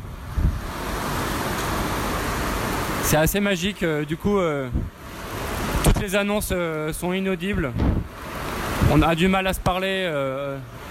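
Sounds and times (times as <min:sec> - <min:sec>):
heavy rain pounding on a roof: 0:00.0 - 0:10.8
speech: 0:03.1 - 0:05.0, 0:06.0 - 0:08.0, 0:08.8 - 0:10.8
dull low thump: 0:07.7 - 0:08.1.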